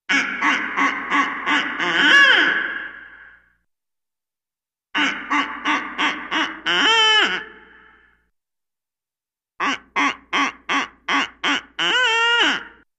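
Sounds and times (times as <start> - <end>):
barred owl or duck call: 0.1 - 3.5, 5.0 - 8.2, 9.6 - 12.9.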